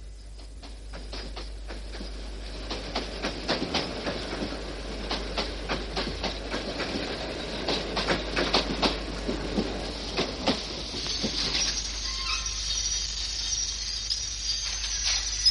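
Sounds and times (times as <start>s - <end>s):
train wheels clacking on rails: 0.4s - 15.4s.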